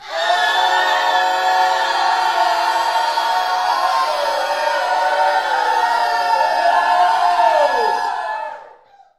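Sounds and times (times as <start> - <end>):
people screaming in gospel: 0.0 - 8.8.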